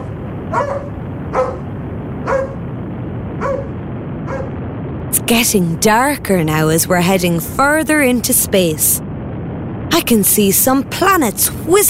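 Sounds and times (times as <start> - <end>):
dog barking: 0.0 - 2.6, 3.4 - 4.6
constant low hiss of noise: 0.0 - 11.8
speech: 0.5 - 0.9, 5.3 - 9.1, 10.0 - 11.8.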